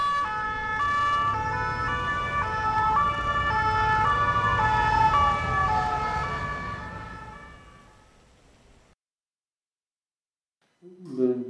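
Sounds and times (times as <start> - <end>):
ambulance siren in France: 0.0 - 8.1
low traffic rumble: 0.0 - 8.9.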